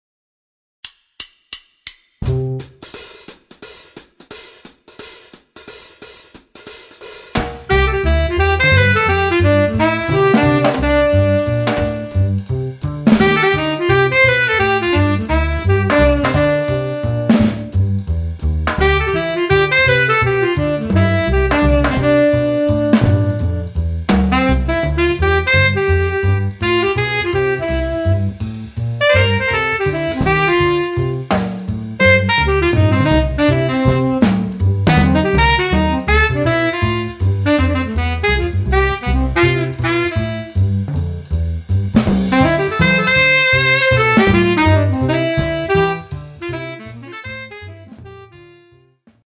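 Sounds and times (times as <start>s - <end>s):
cool blues music: 2.2s - 4.2s, 6.9s - 49.0s.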